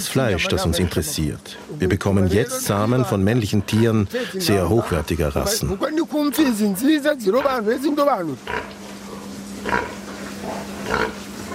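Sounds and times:
speech: 0.0s - 8.8s
steady low hum in a barn: 0.0s - 11.5s
general barn noise: 1.9s - 11.5s
pigs grunting in short rough bursts: 3.3s - 5.8s, 7.2s - 11.5s.

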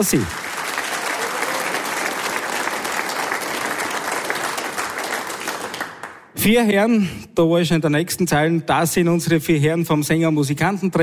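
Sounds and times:
speech: 0.0s - 0.4s, 6.4s - 11.0s
dense applause from a sizable audience: 0.0s - 6.3s.

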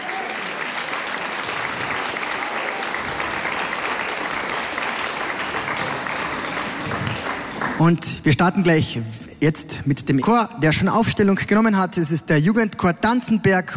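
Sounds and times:
audience applause after school choir: 0.0s - 8.2s
speech: 7.8s - 13.7s.

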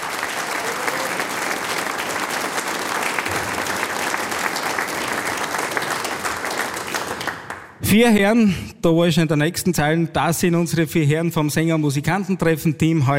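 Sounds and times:
large audience applause: 0.0s - 7.8s
speech: 7.9s - 13.1s.

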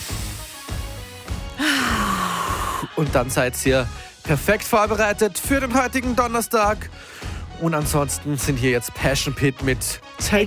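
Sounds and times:
deep breathing in through the nose and out through the mouth: 1.6s - 3.0s, 3.9s - 4.2s, 7.0s - 7.5s
speech: 3.0s - 10.4s.

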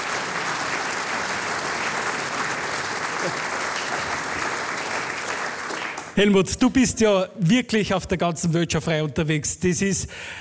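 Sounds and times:
large audience applause: 0.0s - 6.2s
speech: 6.2s - 10.3s.

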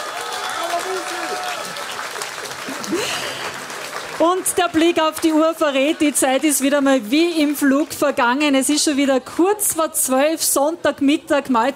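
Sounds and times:
audience applause: 0.0s - 8.1s
speech: 4.2s - 11.7s.

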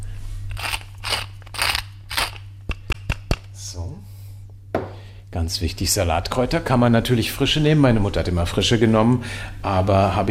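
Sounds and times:
pepper mill grinding whisky pepper: 0.5s - 2.5s
speech: 3.7s - 4.1s, 5.3s - 10.3s.

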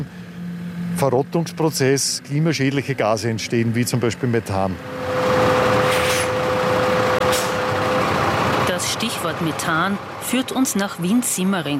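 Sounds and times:
garbage truck engine rumbling on a weighbridge: 0.0s - 11.7s
garbage truck mechanical whine: 0.0s - 11.7s
speech: 1.0s - 5.2s, 9.2s - 11.7s.

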